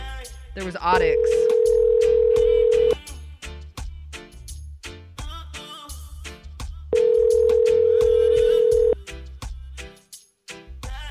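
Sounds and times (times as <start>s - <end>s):
speech: 0.6s - 1.8s
telephone dial tone: 1.2s - 3.0s, 7.0s - 9.0s.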